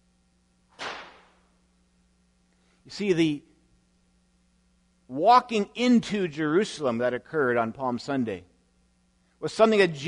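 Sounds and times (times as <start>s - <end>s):
faint low hum: 0.0s - 10.0s
whip crack: 0.7s - 1.4s
speech: 2.9s - 3.5s, 5.1s - 8.5s, 9.4s - 10.0s.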